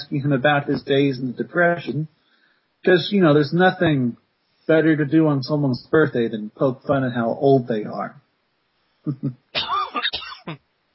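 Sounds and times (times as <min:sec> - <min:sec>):
speech: 0:00.1 - 0:02.2, 0:02.8 - 0:08.2, 0:09.0 - 0:10.6
person coughing harshly with a wheezy edge: 0:09.1 - 0:10.6.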